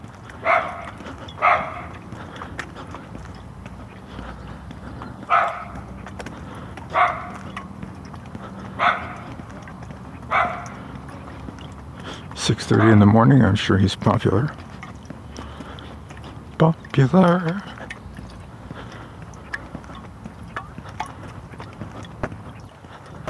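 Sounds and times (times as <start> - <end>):
tiny dog barking: 0.4 - 2.0, 5.3 - 5.8, 6.9 - 7.5, 8.8 - 9.3, 10.3 - 10.8
speech: 12.5 - 14.6, 16.6 - 17.7.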